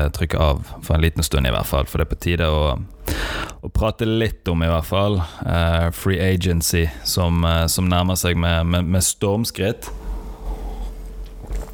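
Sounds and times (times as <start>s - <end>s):
speech: 0.0s - 10.1s
sips and swallows of someone drinking: 10.6s - 11.7s.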